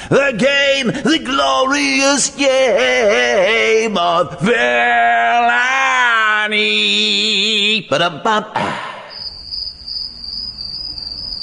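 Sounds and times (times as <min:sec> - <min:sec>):
speech: 0:00.1 - 0:05.8, 0:06.5 - 0:08.8
crickets chirping with a high-pitched trill at night: 0:08.8 - 0:11.4.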